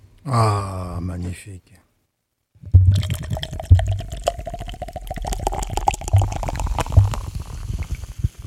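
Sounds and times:
speech: 0:00.2 - 0:01.8
Schlitz beer pouring into a glass: 0:02.9 - 0:08.1.

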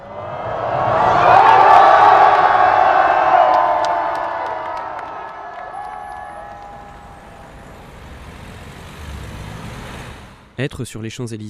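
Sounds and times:
scattered whoops from the crowd: 0:00.0 - 0:07.9
large tightly packed crowd cheering and shouting outdoors on a celebratory avenue: 0:00.0 - 0:08.3
speech: 0:10.6 - 0:11.4.

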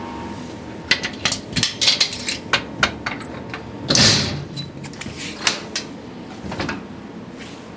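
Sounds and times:
heavy safe door unlocking with metallic clicks and clunks: 0:01.0 - 0:05.9.

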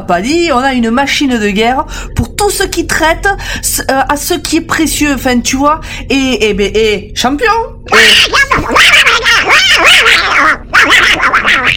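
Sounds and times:
speech: 0:00.1 - 0:11.7
duck quacking with nasal raspy calls: 0:08.0 - 0:11.7.

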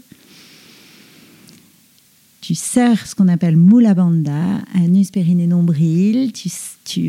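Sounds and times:
long deep inhale through the nose or mouth: 0:00.1 - 0:01.5
speech: 0:02.4 - 0:07.0.

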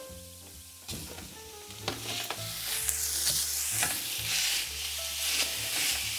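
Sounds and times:
ground meat sizzling in a pan of frying onions and carrots: 0:00.0 - 0:06.1
spatula or spoon scraping and stirring ground meat in a pan: 0:02.0 - 0:06.1.

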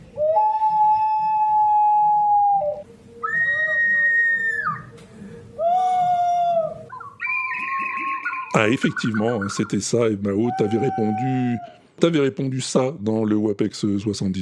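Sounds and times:
whistled shepherd language imitating birdsong: 0:00.1 - 0:04.9, 0:05.6 - 0:11.8
speech: 0:08.6 - 0:14.3.

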